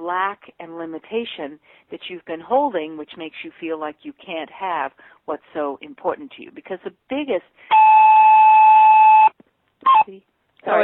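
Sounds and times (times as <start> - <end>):
speech: 0.1 - 8.4, 9.8 - 10.8
mobile phone beeping: 7.7 - 10.1.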